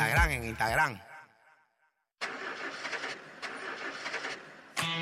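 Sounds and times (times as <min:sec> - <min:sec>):
speech: 0:00.1 - 0:01.1
car engine cranking but failing to start: 0:02.2 - 0:04.9.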